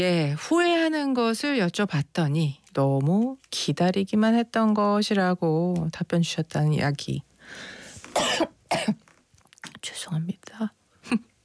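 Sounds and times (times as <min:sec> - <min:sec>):
speech: 0:00.0 - 0:09.0, 0:09.8 - 0:11.3
person coughing from something caught in the throat: 0:08.1 - 0:09.0.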